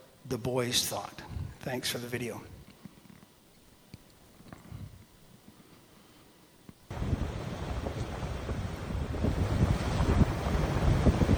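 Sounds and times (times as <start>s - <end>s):
speech: 0.3s - 2.6s
wind buffeting the microphone: 1.3s - 1.6s, 6.9s - 11.3s
churning splashing turbulent rushing water: 6.9s - 11.3s.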